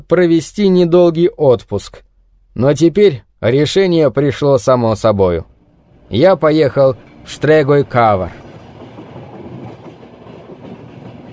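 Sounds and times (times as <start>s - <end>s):
speech: 0.0s - 5.5s, 6.1s - 8.4s
old train rattling along rails with clattering wheels: 5.8s - 11.3s.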